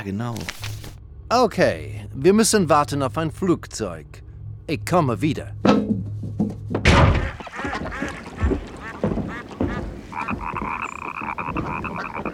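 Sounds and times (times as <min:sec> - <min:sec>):
speech: 0:00.0 - 0:00.7, 0:01.3 - 0:05.8
frog croaking on a spring night by an old harbour: 0:07.2 - 0:12.3.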